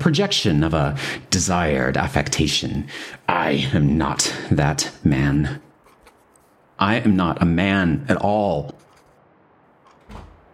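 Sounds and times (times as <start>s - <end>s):
speech: 0.0s - 5.7s, 6.8s - 8.8s
dull thud against a door: 10.0s - 10.5s.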